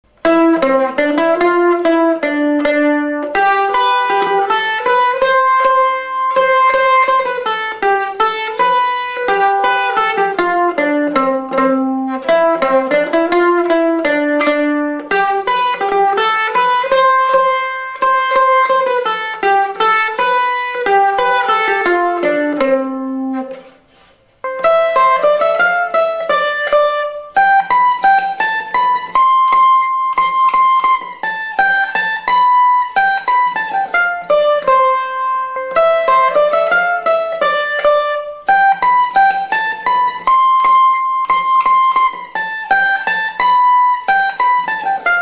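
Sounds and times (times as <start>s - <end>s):
mandolin: 0.0s - 45.2s.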